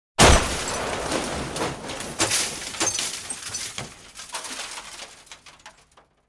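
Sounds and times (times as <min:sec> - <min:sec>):
violent impact: 0:00.2 - 0:05.9.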